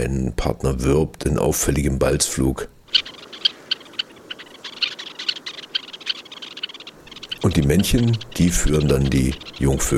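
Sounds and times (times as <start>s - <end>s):
speech: 0.0s - 3.1s, 7.4s - 9.9s
Red-necked Phalarope giving short sharp high chipping calls: 2.9s - 9.9s.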